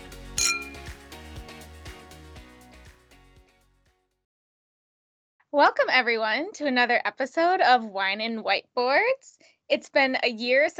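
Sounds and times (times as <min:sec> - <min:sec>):
wine glasses clinking in a toast: 0:00.4 - 0:00.9
speech: 0:05.6 - 0:10.7.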